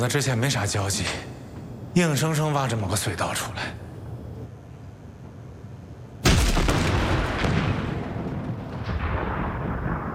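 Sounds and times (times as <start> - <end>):
speech: 0.0 - 1.4, 2.0 - 3.8
explosion: 6.2 - 10.1.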